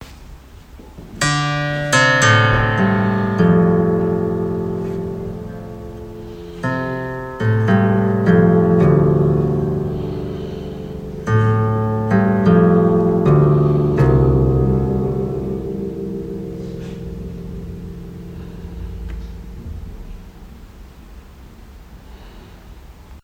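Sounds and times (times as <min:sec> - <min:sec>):
Chinese guqin playing: 0:01.2 - 0:18.1.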